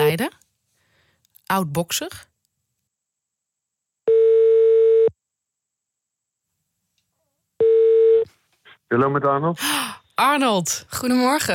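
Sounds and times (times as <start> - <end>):
speech: 0.1 - 0.4, 1.5 - 2.3, 8.9 - 11.5
telephone ringing tone as a call is placed: 4.1 - 5.1, 7.6 - 8.3.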